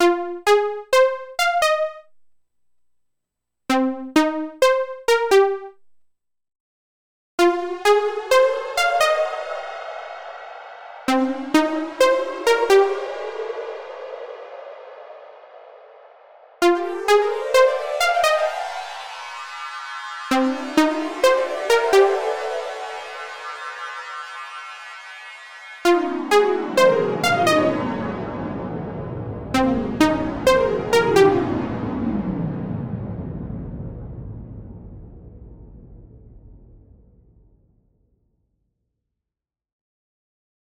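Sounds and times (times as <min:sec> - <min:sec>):
supersaw synth: 0:00.0 - 0:02.0, 0:03.7 - 0:05.7, 0:07.4 - 0:34.5.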